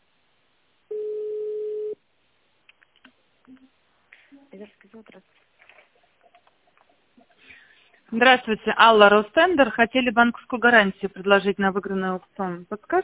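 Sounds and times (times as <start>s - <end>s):
steady telephone tone over a phone line: 0.9s - 2.0s
speech: 4.6s - 5.6s, 8.1s - 13.0s.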